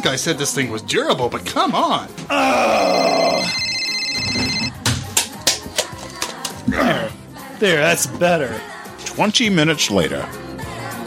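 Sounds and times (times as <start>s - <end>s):
speech: 0.0s - 3.7s, 6.7s - 7.0s, 7.6s - 10.4s
phone ringing with a bright electronic tone: 2.5s - 4.8s.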